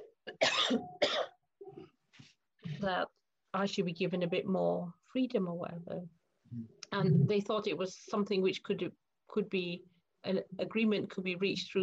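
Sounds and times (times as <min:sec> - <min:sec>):
person coughing: 0:00.0 - 0:01.9
speech: 0:00.7 - 0:01.1, 0:02.8 - 0:11.8.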